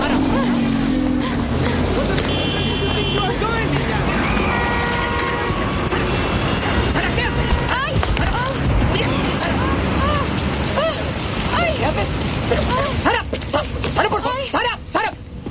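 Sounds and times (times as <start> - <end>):
car engine and road noise while driving: 0.0 - 15.5.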